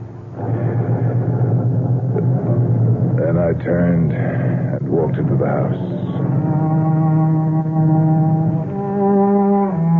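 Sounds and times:
car engine starting and rumbling: 0.0s - 9.0s
speech: 5.2s - 6.8s.

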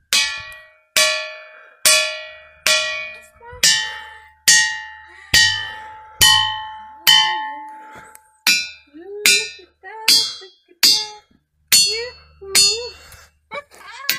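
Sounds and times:
struck ringing rocks giving bell-like tones: 0.1s - 11.1s.

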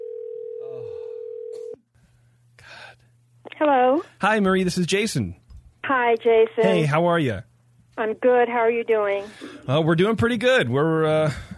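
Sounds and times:
telephone dial tone: 0.0s - 1.8s
speech: 3.6s - 11.5s.

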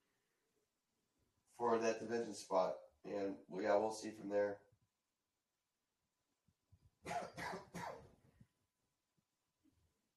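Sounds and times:
speech: 1.6s - 4.6s
harsh loud coughs: 7.1s - 8.1s.

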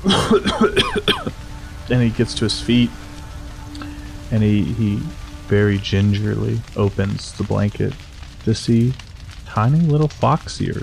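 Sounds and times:
man coughing in a hacking fit: 0.0s - 1.3s
speech: 0.0s - 1.3s, 1.9s - 3.0s, 4.3s - 10.8s.

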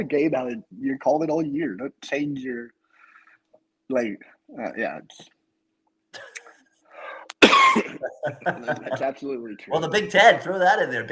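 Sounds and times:
speech: 0.0s - 2.8s, 3.9s - 5.4s, 7.4s - 11.0s
person coughing: 6.2s - 6.6s, 7.4s - 8.2s
laughter: 8.0s - 9.2s.

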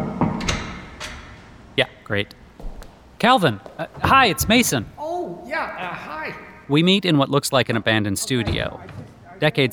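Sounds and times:
archivist's office door in a building basement creaking open: 0.2s - 2.8s
metallic door latch clicks: 0.3s - 1.8s
speech: 1.8s - 2.4s, 3.2s - 4.9s, 5.5s - 9.7s.

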